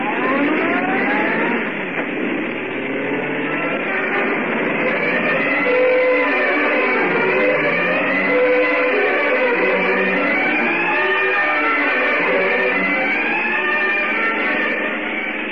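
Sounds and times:
car engine accelerating hard in a chase: 0.0s - 15.5s.

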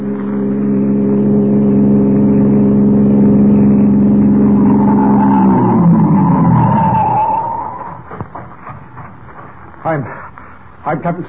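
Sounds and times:
car engine droning as it passes along a road: 0.0s - 9.2s
scattered thumps and rustles: 7.8s - 9.9s
speech: 11.0s - 11.2s.

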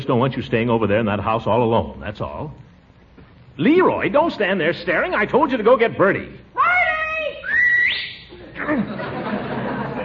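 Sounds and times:
speech: 0.0s - 2.7s, 3.6s - 6.4s, 8.6s - 9.1s
person whistling loudly: 7.4s - 8.3s
laughter: 8.3s - 10.0s.

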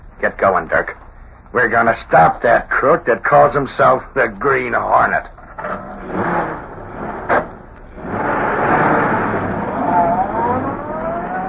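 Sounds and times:
speech: 0.2s - 5.8s
car engine starting with a sharp clunk: 5.6s - 11.4s.

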